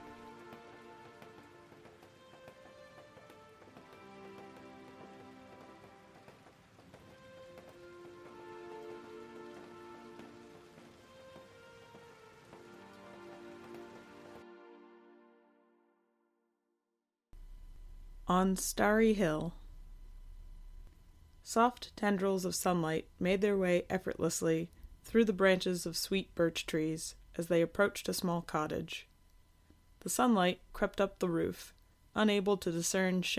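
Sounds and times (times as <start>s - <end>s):
steady rain pattering: 0.0s - 14.4s
speech: 18.3s - 19.6s, 21.5s - 29.1s, 30.0s - 33.3s.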